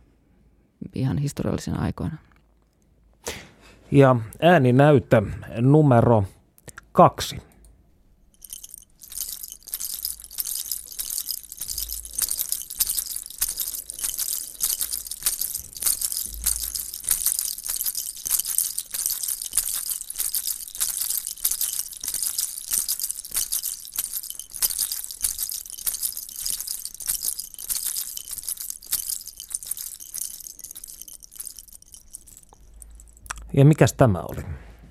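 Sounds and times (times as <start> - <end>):
speech: 0.9 - 2.3, 3.9 - 6.4, 7.0 - 7.5, 33.6 - 34.6
Stone Age animal-tooth rattles clattering: 8.4 - 33.3.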